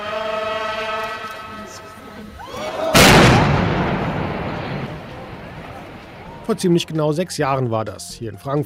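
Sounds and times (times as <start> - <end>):
murmur of voices: 0.0 - 7.6
tones: 0.0 - 7.6
explosive demolition of a high-rise tower in Frankfurt: 3.0 - 6.5
speech: 6.5 - 8.6.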